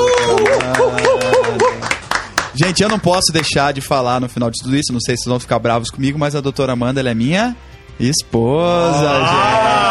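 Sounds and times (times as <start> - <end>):
crowd applause: 0.0 - 3.0
speech: 2.6 - 9.9.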